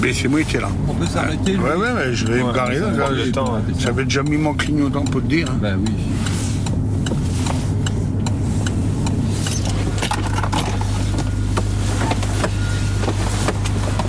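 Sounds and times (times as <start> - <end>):
speech: 0.0 - 6.4
parked car engine humming low and steady: 0.0 - 14.0
keys jangling: 9.4 - 11.1.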